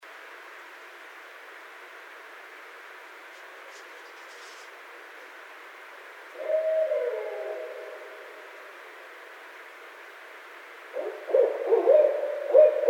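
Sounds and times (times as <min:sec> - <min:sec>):
background hiss: 0:00.0 - 0:12.8
barred owl hooting: 0:06.3 - 0:09.3, 0:10.8 - 0:12.8.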